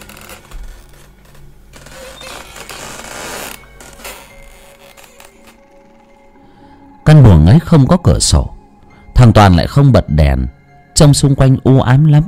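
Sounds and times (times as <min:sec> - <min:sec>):
old unoiled door creaking slowly open: 0:00.0 - 0:06.3
speech: 0:07.6 - 0:08.6, 0:09.2 - 0:12.2.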